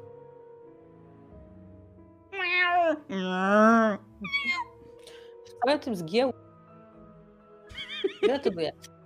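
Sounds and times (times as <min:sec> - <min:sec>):
cats meowing: 0:02.3 - 0:04.8
speech: 0:02.9 - 0:04.7, 0:05.6 - 0:06.4, 0:08.3 - 0:09.0.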